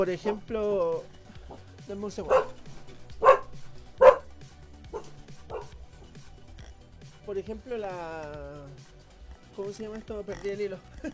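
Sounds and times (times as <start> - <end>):
speech: 0.0 - 2.6, 7.3 - 9.0, 9.6 - 11.1
dog barking: 0.2 - 6.1.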